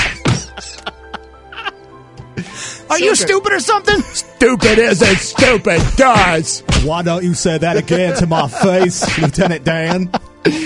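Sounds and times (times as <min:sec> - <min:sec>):
punch to the face: 0:00.0 - 0:00.5, 0:04.6 - 0:07.0, 0:09.0 - 0:09.4
laughter: 0:00.2 - 0:01.8, 0:07.6 - 0:10.6
speech: 0:02.9 - 0:10.6.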